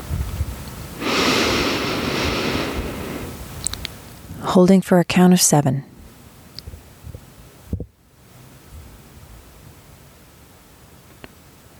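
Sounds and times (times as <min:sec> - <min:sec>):
slow inhale through the nose during a 4-7-8 breathing exercise: 0:01.0 - 0:03.7
speech: 0:04.5 - 0:05.9.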